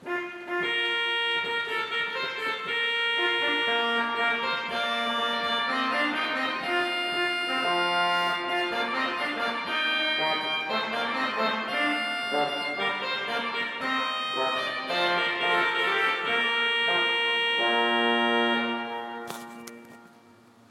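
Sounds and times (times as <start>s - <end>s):
trumpet: 0.0s - 20.3s
organ: 0.9s - 20.3s.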